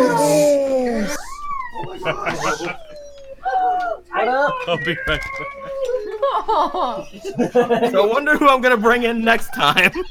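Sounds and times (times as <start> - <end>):
puppy whining and yipping: 1.1 - 6.2
laughter: 1.8 - 2.9, 4.3 - 8.5, 9.6 - 10.1
speech: 2.1 - 2.8, 4.6 - 5.6, 6.3 - 10.1.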